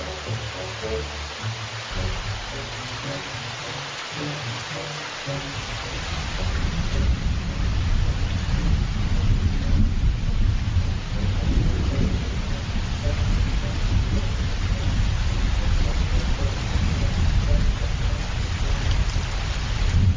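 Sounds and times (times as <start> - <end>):
heavy rain during a thunderstorm: 0.0 - 20.1
low rumbling thunder: 5.7 - 20.1.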